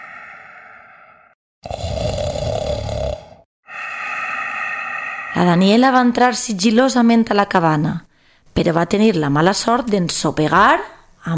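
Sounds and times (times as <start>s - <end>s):
loud rasping snoring: 1.6s - 3.5s
speech: 5.4s - 11.3s.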